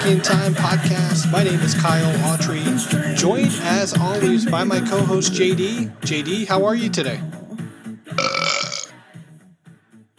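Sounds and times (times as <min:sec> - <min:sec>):
speech: 0:00.0 - 0:07.4
loud drawn-out raspy burp: 0:08.2 - 0:08.9.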